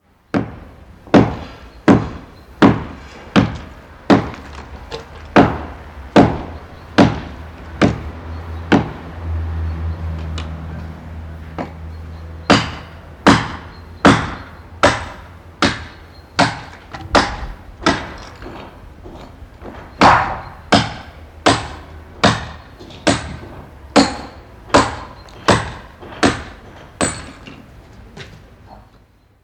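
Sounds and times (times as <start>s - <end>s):
chisel hammer on a construction site: 0.3s - 4.5s, 5.4s - 8.1s, 8.7s - 9.0s, 12.4s - 18.7s, 19.6s - 27.5s.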